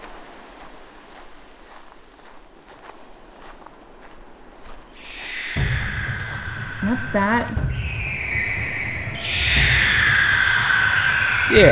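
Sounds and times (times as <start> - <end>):
low rumble: 5.0 - 11.7
shrill drawn-out bird screech: 5.0 - 11.7
speech: 6.9 - 7.8, 11.5 - 11.7.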